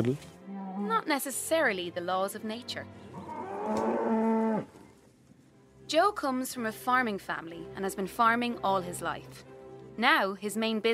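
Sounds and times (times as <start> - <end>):
speech: 0.0 - 3.0, 3.7 - 4.2, 5.9 - 10.9
cow mooing on a small livestock farm: 3.1 - 4.7.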